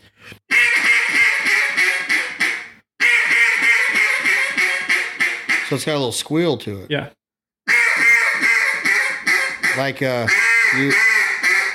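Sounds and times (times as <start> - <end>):
lazy duck quacks blown on a duck call: 0.5 - 5.8, 7.7 - 11.7
speech: 5.7 - 7.2, 9.8 - 11.1.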